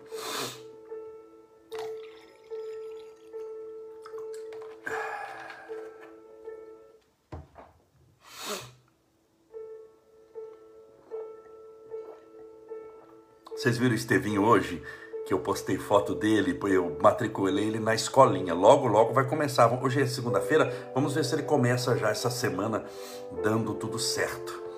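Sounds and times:
water pouring into a drinking glass: 1.7 - 6.0
speech: 13.6 - 24.6.

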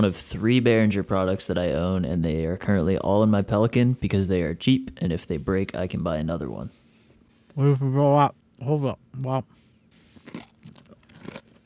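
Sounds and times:
speech: 0.0 - 6.8, 7.6 - 9.6
person chewing a hard crunchy granola bar: 10.0 - 11.6.

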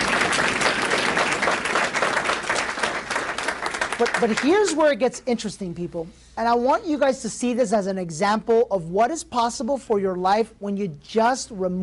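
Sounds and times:
crowd applauding: 0.0 - 4.9
speech: 4.0 - 11.8.

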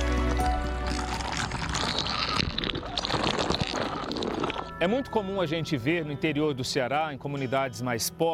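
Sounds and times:
cold well water poured over a person bathing in Ceará, Brazil: 0.0 - 4.8
speech: 4.8 - 8.3.

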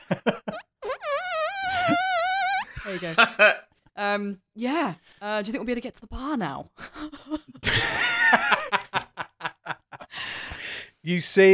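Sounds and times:
vocal imitation of a wet squeaky fart: 0.4 - 2.8
speech: 3.0 - 8.0, 11.1 - 11.5
laughter: 7.0 - 10.0.

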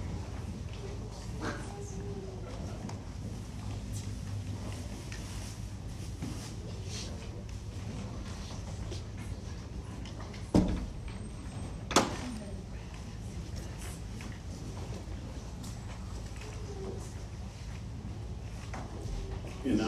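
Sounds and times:
steady low hum: 0.0 - 19.8
church door swinging shut with a solid thud: 10.5 - 11.1.

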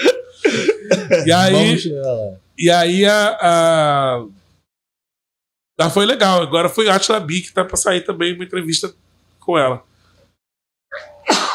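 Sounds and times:
laughter: 0.0 - 1.8
speech: 1.2 - 4.4, 5.8 - 9.9
person sneezing: 10.9 - 11.5.

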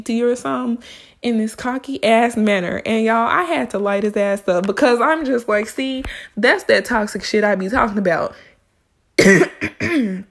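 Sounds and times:
speech: 0.0 - 8.5, 9.2 - 10.3
person coughing harshly: 9.2 - 10.3
throat clearing: 9.2 - 10.3.

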